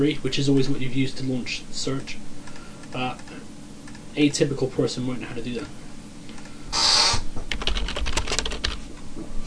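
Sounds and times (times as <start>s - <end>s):
speech: 0.0s - 2.3s, 2.9s - 3.4s, 4.2s - 5.8s
computer keyboard keys clattering as a search is typed: 7.5s - 8.8s.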